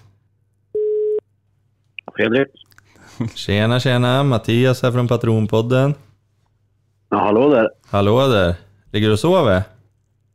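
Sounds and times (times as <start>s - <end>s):
low hum: 0.0s - 10.3s
telephone tone while placing a call: 0.8s - 1.2s
speech: 2.2s - 6.1s, 7.1s - 9.7s.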